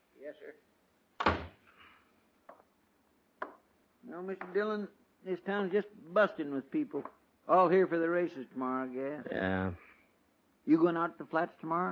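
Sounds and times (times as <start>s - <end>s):
speech: 0.3s - 0.8s, 4.1s - 9.9s, 10.6s - 11.9s
door in a Kansas town shutting with a thunk: 1.2s - 1.6s.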